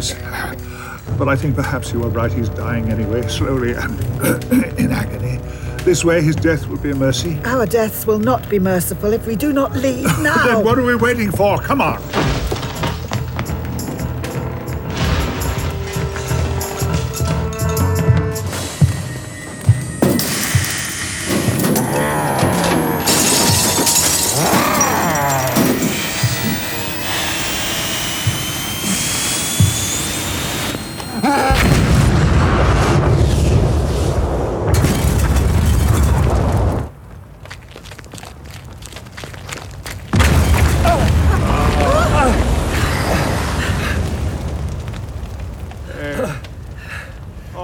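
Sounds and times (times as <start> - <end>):
speech: 0.0 - 12.4
debris crashing: 10.1 - 47.6
glass shattering: 12.0 - 32.2, 34.8 - 36.8
loud explosion: 12.1 - 16.6, 18.5 - 37.0, 40.1 - 46.6
heavy sustained roar: 21.1 - 33.0.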